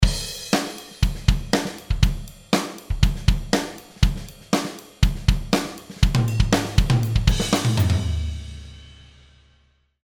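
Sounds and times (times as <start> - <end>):
MIDI drum kit played with Superior Drummer: 0.0 - 9.5.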